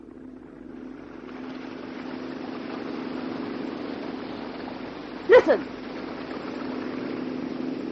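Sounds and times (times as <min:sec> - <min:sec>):
motorboat engine throbbing: 0:00.0 - 0:07.9
person calling out: 0:05.3 - 0:05.6
speech: 0:05.3 - 0:05.8.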